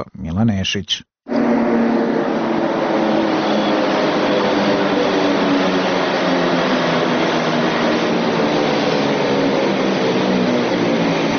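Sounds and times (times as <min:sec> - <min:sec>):
speech: 0:00.0 - 0:01.1
commuter train pulling in at a station platform: 0:01.3 - 0:11.3.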